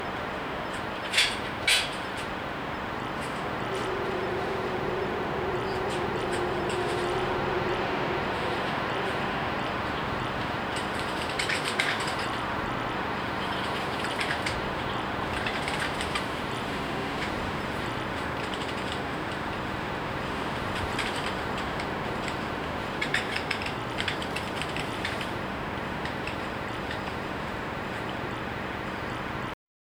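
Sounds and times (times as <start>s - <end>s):
gentle wind breeze rustling: 0.0s - 29.4s.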